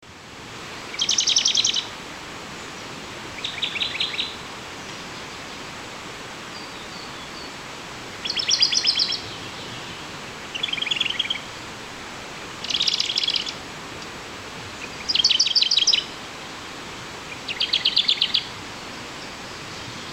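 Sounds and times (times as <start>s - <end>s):
Phylloscopus schwarzi singing: 0.9s - 1.9s, 3.4s - 5.6s, 6.5s - 7.6s, 8.2s - 11.5s, 12.6s - 13.6s, 14.8s - 16.1s, 17.3s - 18.5s.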